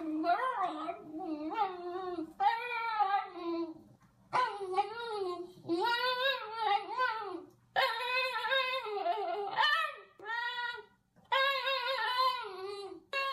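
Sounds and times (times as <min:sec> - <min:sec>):
Basenji dog yodeling and warbling: 0:00.2 - 0:13.3.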